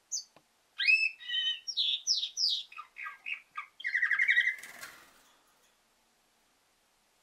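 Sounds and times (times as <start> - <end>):
female canary chirping: 0.0 - 5.2.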